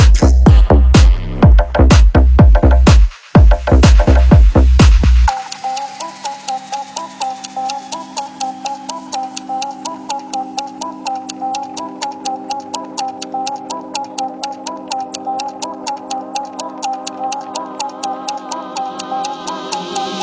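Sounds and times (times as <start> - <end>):
clock ticking: 0.0 - 20.2
sustained electronic drone: 5.2 - 20.2
wavering melodic tone: 5.3 - 20.2.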